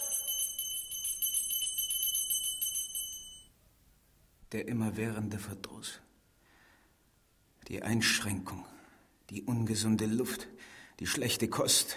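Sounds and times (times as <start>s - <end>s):
small bell ringing: 0.0s - 3.5s
speech: 4.5s - 6.1s, 7.7s - 11.9s.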